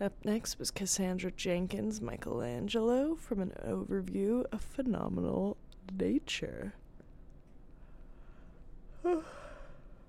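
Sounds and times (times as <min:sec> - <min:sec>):
speech: 0:00.0 - 0:06.8, 0:09.0 - 0:09.5
person yawning: 0:09.0 - 0:09.7.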